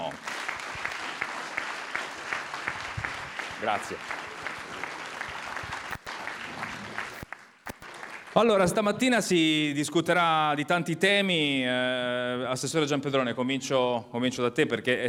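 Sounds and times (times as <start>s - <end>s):
loud audience applause: 0.0s - 8.7s
speech: 3.6s - 4.2s, 8.4s - 15.0s.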